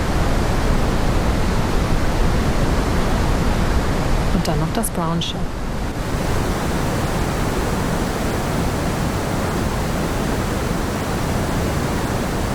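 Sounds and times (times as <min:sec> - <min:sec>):
pink noise: 0:00.0 - 0:12.5
speech: 0:04.4 - 0:05.6.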